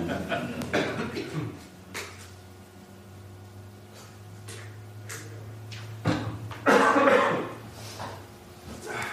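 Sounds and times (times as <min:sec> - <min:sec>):
steady low electrical hum: 0:00.0 - 0:09.1
harsh coughs: 0:00.7 - 0:01.7, 0:06.6 - 0:07.6.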